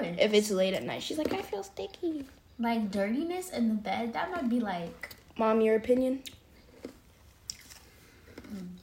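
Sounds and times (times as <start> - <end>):
speech: 0.1 - 6.4
ice being chewed: 6.3 - 8.8.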